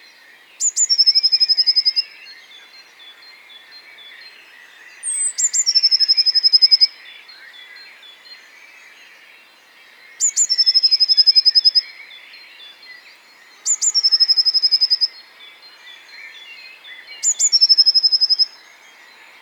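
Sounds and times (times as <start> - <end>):
Eurasian blue tit Cyanistes caeruleus song of high notes and even trill: 0.0 - 19.4.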